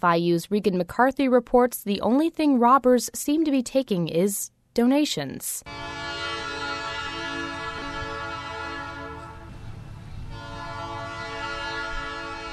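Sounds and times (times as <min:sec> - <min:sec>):
speech: 0:00.0 - 0:06.0
train horn blaring: 0:05.7 - 0:12.5.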